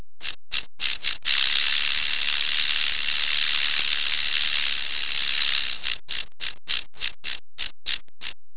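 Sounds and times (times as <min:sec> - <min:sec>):
rattlesnake rattling: 0:00.2 - 0:08.4.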